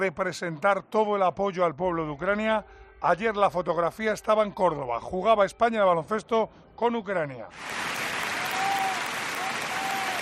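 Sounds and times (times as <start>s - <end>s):
speech: 0.0s - 8.0s
basketball fans applauding at a Spain–Ukraine game in Córdoba: 7.6s - 10.2s.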